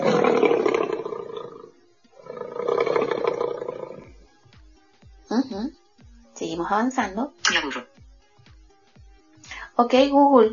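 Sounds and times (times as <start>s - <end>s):
lion roaring: 0.0s - 4.2s
speech: 6.7s - 7.9s, 9.8s - 10.5s.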